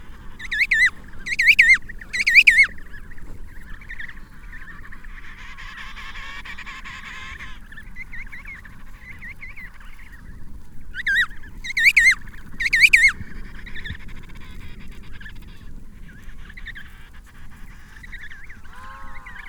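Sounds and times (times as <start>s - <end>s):
penguin calls in loud wavering harmonic bursts: 0.0s - 2.8s, 11.0s - 13.2s.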